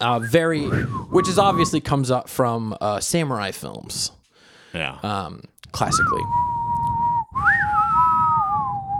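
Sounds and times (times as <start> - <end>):
speech: 0.0 - 6.5
person whistling a western showdown tune: 0.2 - 1.7, 5.9 - 8.9.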